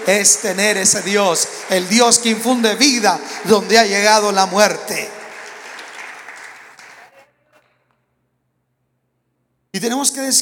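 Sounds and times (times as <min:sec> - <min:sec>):
speech: 0:00.0 - 0:05.2, 0:09.8 - 0:10.3
crowd applauding: 0:00.0 - 0:07.4.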